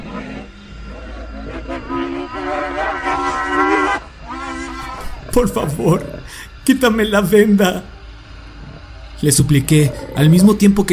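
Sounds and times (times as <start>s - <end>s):
pig squealing: 0.0s - 6.4s
low steady rumble: 0.0s - 10.9s
speech: 5.4s - 7.9s, 9.2s - 10.9s.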